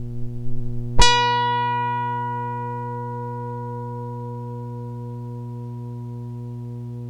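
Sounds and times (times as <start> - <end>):
guitar string: 0.0 - 7.0.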